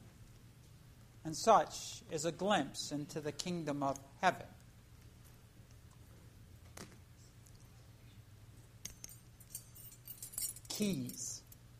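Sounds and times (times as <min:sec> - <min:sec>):
low steady hum: 0:00.0 - 0:11.7
speech: 0:01.2 - 0:04.6, 0:10.8 - 0:11.3
keys jangling: 0:08.8 - 0:11.6.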